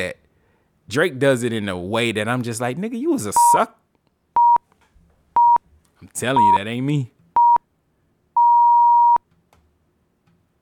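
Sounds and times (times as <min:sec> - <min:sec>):
speech: 0:00.0 - 0:00.2, 0:00.9 - 0:03.8, 0:06.0 - 0:07.2
electronic beeping: 0:03.4 - 0:03.6, 0:06.4 - 0:06.6, 0:07.4 - 0:07.6, 0:08.4 - 0:09.2.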